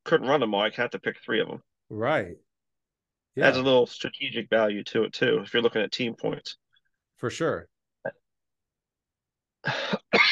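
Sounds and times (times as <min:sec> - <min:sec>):
speech: 0:00.1 - 0:02.5, 0:03.4 - 0:06.6, 0:07.2 - 0:08.2, 0:09.6 - 0:10.1
coughs: 0:09.7 - 0:10.3.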